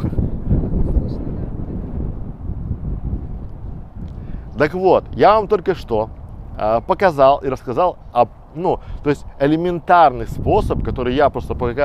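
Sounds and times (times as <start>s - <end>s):
sea wind buffeting the microphone: 0.0s - 11.8s
speech: 4.6s - 11.8s.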